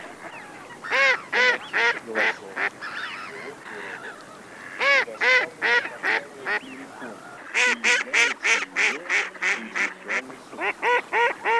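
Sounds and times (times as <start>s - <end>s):
mallard duck decoy call: 0.1s - 3.3s, 4.6s - 6.6s, 7.4s - 11.5s.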